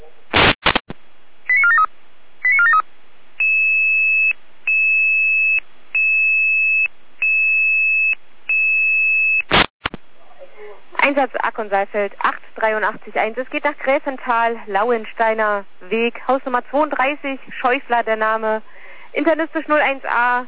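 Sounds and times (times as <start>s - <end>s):
short bursts of noise from a radio pager: 0.3s - 10.1s
speech: 11.2s - 20.4s.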